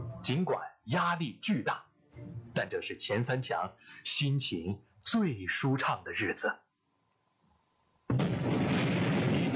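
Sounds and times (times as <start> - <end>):
speech: 0.2 - 6.6
China's first atomic bomb detonation: 8.1 - 9.5.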